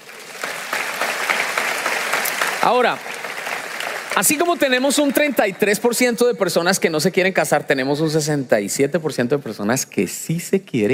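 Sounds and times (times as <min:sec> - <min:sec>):
audience applause during a talk: 0:00.0 - 0:05.9
speech: 0:02.6 - 0:03.1, 0:04.2 - 0:10.9.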